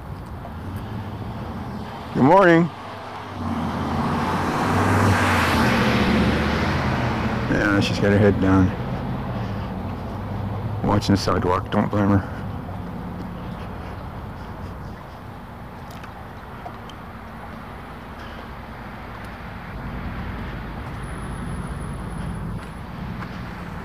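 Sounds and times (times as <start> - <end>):
road traffic of passing vehicles rumbling outdoors: 0.0 - 23.8
speech: 2.1 - 2.8, 7.5 - 8.8, 10.8 - 12.3.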